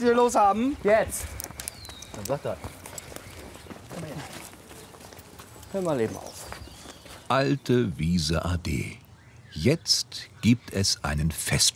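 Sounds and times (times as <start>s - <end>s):
speech: 0.0s - 1.4s, 2.1s - 2.8s, 5.7s - 6.3s, 7.3s - 11.7s
donkey hooves trotting on dry, nearly grassless ground: 0.5s - 7.4s.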